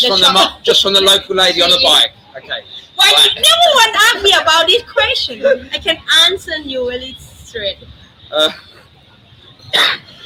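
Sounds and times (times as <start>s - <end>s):
speech: 0.0s - 8.6s, 9.7s - 10.2s
harsh raspy smoker's coughs: 9.6s - 10.2s.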